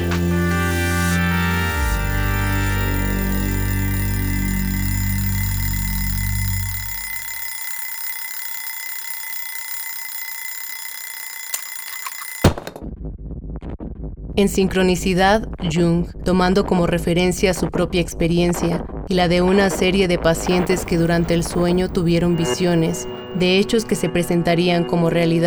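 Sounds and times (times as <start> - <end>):
alarm clock ringing: 0.0 - 12.6, 20.5 - 23.7
speech: 14.4 - 25.4.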